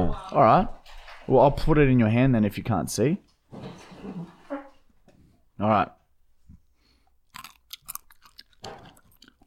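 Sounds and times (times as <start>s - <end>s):
speech: 0.1s - 4.4s, 5.6s - 6.0s
person chewing a berry: 7.2s - 9.4s.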